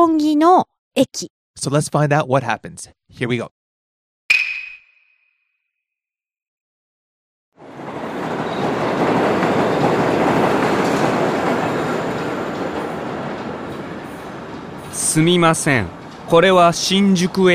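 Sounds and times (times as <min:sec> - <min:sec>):
speech: 0:00.0 - 0:03.6, 0:15.1 - 0:17.5
out-of-service train rumbling past a station platform: 0:07.6 - 0:17.5.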